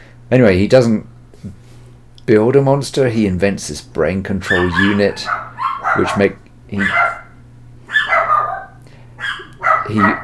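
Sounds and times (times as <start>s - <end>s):
low steady hum: 0.0s - 10.2s
speech: 0.3s - 1.6s, 2.3s - 5.4s, 6.0s - 7.1s, 9.9s - 10.2s
dog barking: 4.4s - 10.2s.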